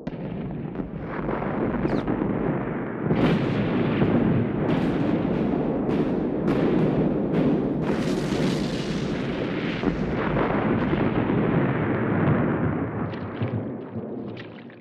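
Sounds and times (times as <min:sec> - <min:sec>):
sharp artillery explosion blasts: 0:00.0 - 0:13.1
First World War artillery bombardment at the Battle of Verdun: 0:00.1 - 0:13.1.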